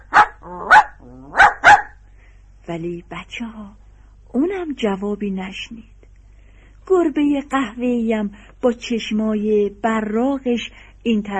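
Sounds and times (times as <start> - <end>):
sheepdog barking loudly: 0.0 - 2.0
speech: 2.7 - 5.9, 6.9 - 11.3.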